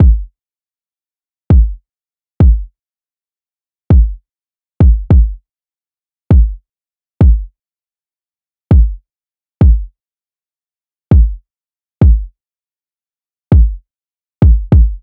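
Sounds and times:
kick drum loops: 0.0 - 0.3, 1.5 - 1.8, 2.4 - 2.7, 3.9 - 4.2, 4.8 - 5.4, 6.3 - 6.6, 7.2 - 7.5, 8.7 - 9.0, 9.6 - 9.9, 11.1 - 11.4, 12.0 - 12.3, 13.5 - 13.8, 14.4 - 15.0.

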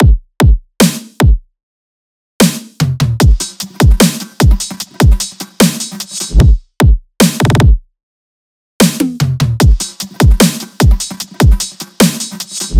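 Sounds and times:
full drum loop: 3.0 - 7.8, 8.8 - 12.7.

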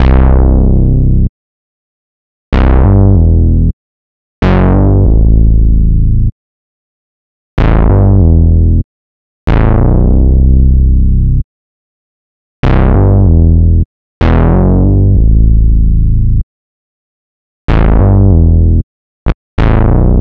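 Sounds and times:
synth bass loop in E minor: 0.0 - 1.3, 2.5 - 3.7, 4.4 - 6.3, 7.6 - 8.8, 9.5 - 11.2, 12.6 - 16.4, 17.7 - 18.8, 19.6 - 20.1.

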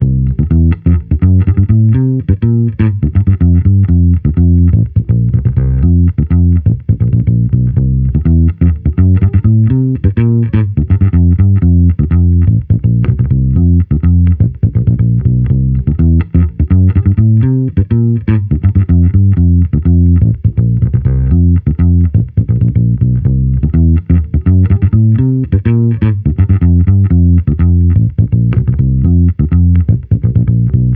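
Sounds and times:
amped electric bass loop in C: 0.0 - 30.9.

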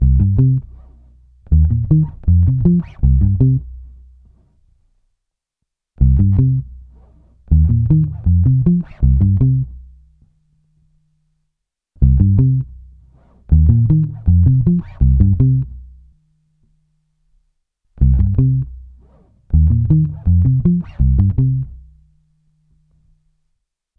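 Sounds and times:
direct electric bass loop 160 Cm: 0.0 - 0.9, 1.5 - 4.0, 6.0 - 9.9, 12.0 - 16.0, 18.0 - 21.9.

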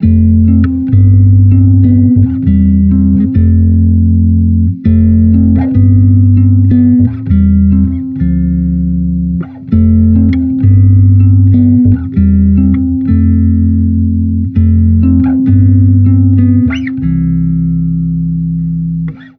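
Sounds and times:
amped electric bass loop in C: 0.0 - 19.3.

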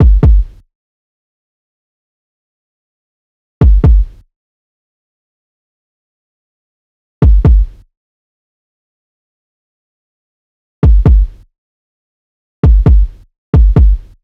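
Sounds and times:
kick drum loop: 0.0 - 0.6, 3.6 - 4.2, 7.2 - 7.8, 10.8 - 11.4, 12.6 - 14.1.

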